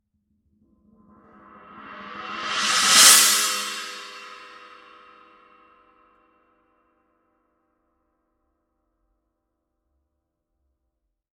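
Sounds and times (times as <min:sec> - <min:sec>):
Paiste PST 8 Reflector China cymbal: 0:02.0 - 0:05.7.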